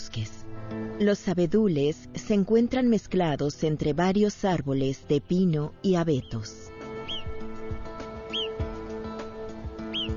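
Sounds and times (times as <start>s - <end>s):
speech: 0.2s - 0.4s, 1.0s - 6.7s
shrill alarm calls warning of danger in Rodna National Park, Eastern Carpathians: 7.0s - 7.4s, 8.2s - 8.6s, 9.8s - 10.1s.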